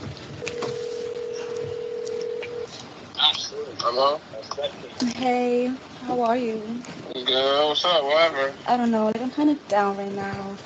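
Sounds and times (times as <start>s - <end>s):
faint noise: 0.0s - 10.6s
steady electronic phone dialing tone over speakerphone: 0.4s - 2.7s
speech: 3.9s - 10.6s.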